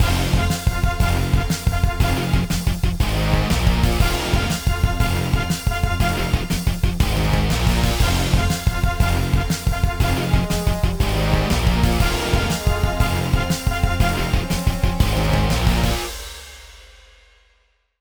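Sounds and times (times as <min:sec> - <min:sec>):
rock groove: 0:00.0 - 0:16.8.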